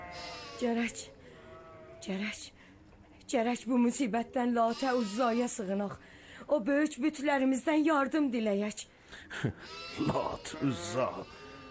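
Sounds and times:
hungry lambs bleating in a flock: 0.0 - 2.0, 4.6 - 6.0, 9.6 - 11.6
speech: 0.6 - 1.2, 2.0 - 2.6, 3.3 - 11.4.

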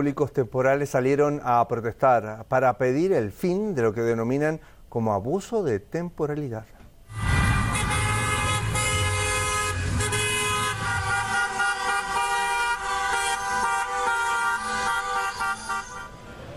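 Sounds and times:
speech: 0.0 - 7.3
car engine rumble: 7.1 - 13.8
car horns honking from a line of protest cars in Madrid: 7.1 - 16.5.

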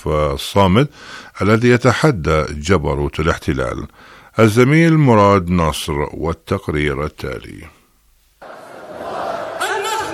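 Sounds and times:
speech: 0.0 - 7.8
large crowd chanting an oath at a rally: 8.4 - 10.1.

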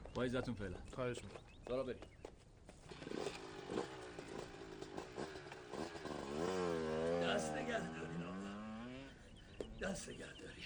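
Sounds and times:
speech: 0.2 - 2.2, 9.8 - 10.6
motorcycle engine revving and pulling away: 2.9 - 9.3.

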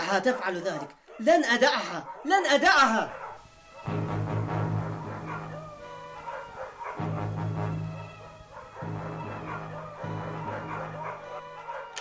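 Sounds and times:
speech: 0.1 - 3.2
several dogs barking and yelping: 0.1 - 4.1, 4.7 - 11.9
steady low hum: 3.8 - 11.4.

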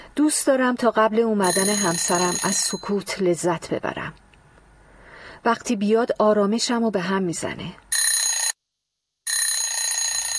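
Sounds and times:
speech: 0.2 - 4.2, 5.4 - 7.8
telephone ringing with a bright high electronic ring: 1.4 - 3.0, 7.9 - 8.6, 9.3 - 10.3.

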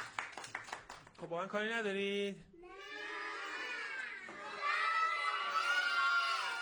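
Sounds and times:
speech: 1.2 - 2.5
group of children cheering and shouting together: 2.6 - 6.6.

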